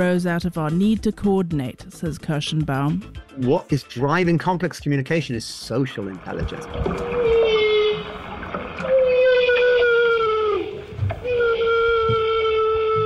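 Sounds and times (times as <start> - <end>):
speech: 0.0 - 7.2
low watery rumble: 5.4 - 13.0
humpback whales trumpeting feeding calls while bubble-net feeding in Alaska: 6.1 - 13.0.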